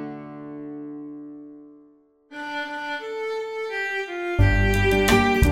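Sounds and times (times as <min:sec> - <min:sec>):
violin playing in G minor: 0:02.3 - 0:05.4.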